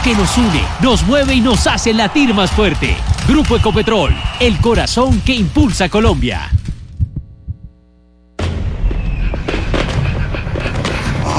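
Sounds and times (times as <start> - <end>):
fireworks exploding with booms and sharp crackles: 0.0 - 5.3, 8.4 - 11.2
speech: 0.0 - 6.6.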